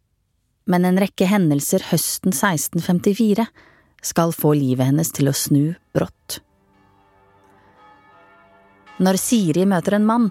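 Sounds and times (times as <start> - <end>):
speech: 0.7 - 6.5, 9.0 - 10.2
church bells ringing over an island: 5.3 - 10.2.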